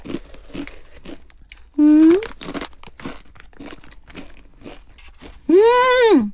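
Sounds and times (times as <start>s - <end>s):
biting and chewing crunchy food: 0.0s - 5.5s
short loud rising hum of a voice: 1.8s - 2.3s, 5.5s - 6.3s.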